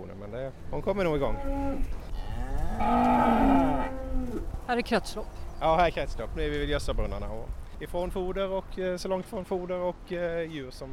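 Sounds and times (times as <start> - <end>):
speech: 0.2 - 2.0, 2.8 - 10.9
dairy cow that calved this morning mooing in a barn: 1.2 - 4.4.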